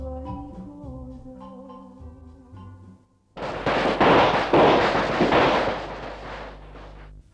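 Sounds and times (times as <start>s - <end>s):
long string of wedding firecrackers for the bride procession: 3.4s - 7.1s.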